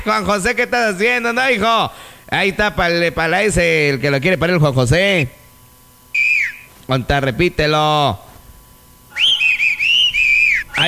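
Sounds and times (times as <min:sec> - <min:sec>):
speech: 0:00.0 - 0:05.4, 0:06.9 - 0:08.3
person whistling: 0:09.1 - 0:10.8.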